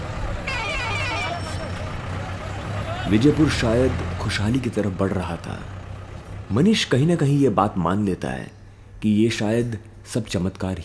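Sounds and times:
crowd chatter: 0.0 - 3.2
rumble of buses and traffic: 0.0 - 10.8
blaring tourist bus horn: 0.1 - 3.1
speech: 3.1 - 5.8, 6.5 - 10.8.

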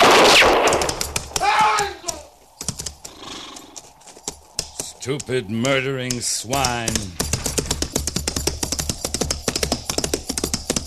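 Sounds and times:
loud gunshot: 0.0 - 1.1
clattering hooves: 0.4 - 10.8
horse whinnying: 3.1 - 4.0
speech: 5.0 - 7.2.

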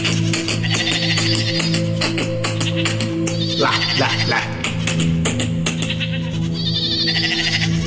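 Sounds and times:
steady droning background: 0.0 - 7.8
flock of sheep and goats bleating across a river: 0.1 - 4.8, 5.7 - 7.8
speech: 4.0 - 5.2.

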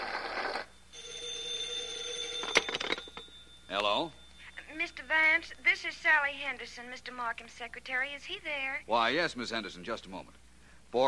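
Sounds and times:
telephone bell ringing: 0.0 - 6.2
steady hum tone: 0.6 - 8.9
telephone being jostled: 2.2 - 3.2
speech: 5.2 - 11.0.

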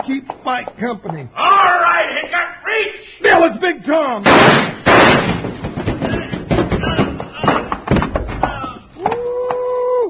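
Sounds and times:
speech: 0.1 - 5.4
sharp crack: 4.2 - 8.6
body tumbling down a flight of steps: 4.3 - 9.6.

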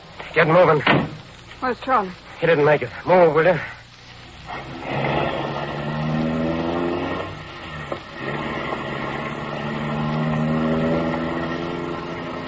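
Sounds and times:
speech: 0.4 - 3.8, 4.5 - 5.1
car engine revving as the vehicle pulls away: 4.3 - 12.4.

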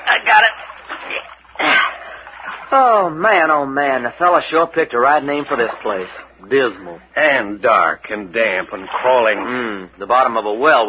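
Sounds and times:
water splashing as a pole pushes a boat through a swamp: 0.0 - 6.4, 8.3 - 9.7
speech: 2.7 - 10.8.

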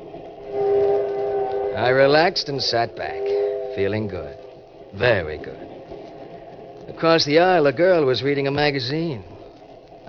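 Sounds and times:
express train bound for New York rumbling on rails: 0.0 - 10.0
sustained whining tone: 0.0 - 10.0
speech: 1.8 - 5.8, 6.9 - 9.3.

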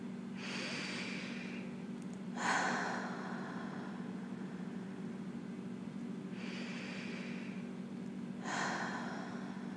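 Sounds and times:
steady low hum: 0.0 - 9.7
slow deep breaths in and out: 0.4 - 1.8, 2.4 - 5.1, 6.3 - 7.7, 8.4 - 9.7.

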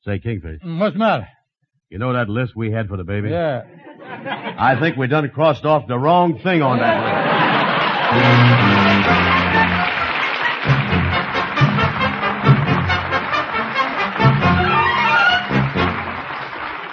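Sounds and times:
speech: 0.0 - 7.4, 8.1 - 9.8
laughter: 3.3 - 5.3, 6.4 - 12.5
deep ocean liner whistle blowing: 8.0 - 16.3.

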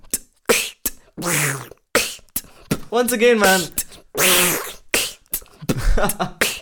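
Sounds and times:
breathy vocal bursts and clicks imitating animals and objects: 0.0 - 5.7
person imitating a cat meowing: 0.5 - 2.3, 3.4 - 5.3
speech: 1.2 - 1.8, 2.9 - 4.7, 6.0 - 6.4.

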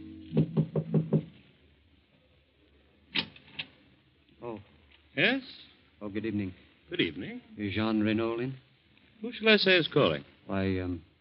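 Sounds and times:
firm knocks on a wooden door: 0.3 - 1.3
speech: 5.2 - 11.1.

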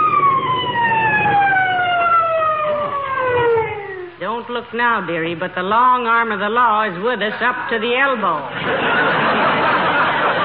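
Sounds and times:
emergency vehicle sirens wailing: 0.0 - 4.4
low rumble of traffic: 0.0 - 8.6
speech: 4.5 - 9.7
laughter: 8.5 - 10.4.

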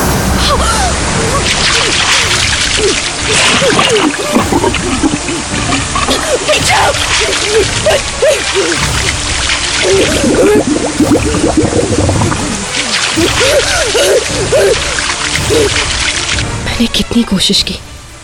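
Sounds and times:
water rushing and splashing in over the main front door: 0.0 - 18.2
speech: 16.8 - 17.9.

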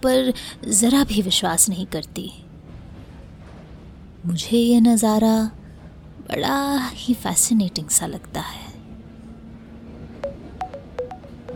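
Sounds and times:
speech: 0.0 - 2.5, 4.2 - 5.6, 6.3 - 8.6
phone ringing with short electronic beeps: 10.2 - 11.5.

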